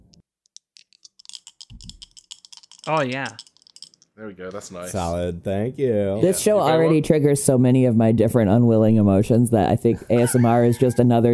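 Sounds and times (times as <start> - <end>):
dice clacking: 0.0 - 4.2
speech: 2.8 - 3.4, 4.2 - 11.3.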